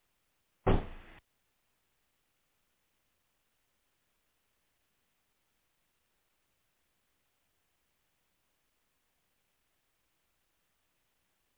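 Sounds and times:
door closing thump: 0.7 - 1.2.

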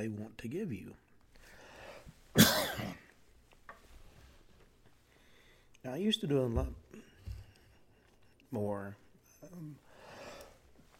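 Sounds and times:
speech: 0.0 - 1.1, 5.8 - 7.0, 8.5 - 9.9
person coughing: 2.4 - 3.1.

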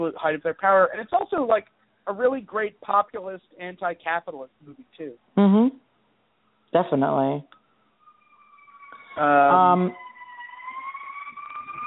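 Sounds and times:
speech: 0.0 - 5.8, 6.7 - 7.6, 9.2 - 10.0
emergency vehicle siren wailing on street: 8.0 - 11.8.

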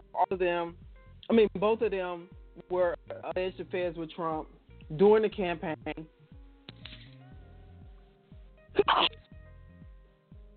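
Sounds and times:
low steady hum: 0.0 - 10.5
speech: 0.2 - 6.2, 8.8 - 9.2
person sneezing: 8.8 - 9.2.

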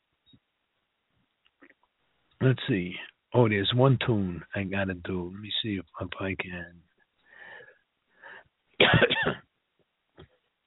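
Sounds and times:
speech: 2.4 - 6.9
person coughing: 8.8 - 9.4
throat clearing: 8.8 - 9.4.

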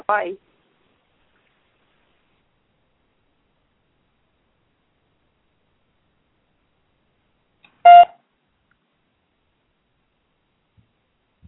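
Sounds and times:
speech: 0.1 - 0.5
short electronic beep like a touch-tone phone key: 7.9 - 8.1.

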